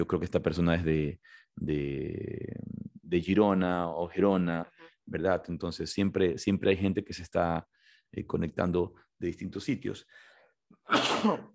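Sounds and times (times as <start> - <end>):
speech: 0.0 - 10.3, 10.9 - 11.5
loud sneeze: 10.9 - 11.5.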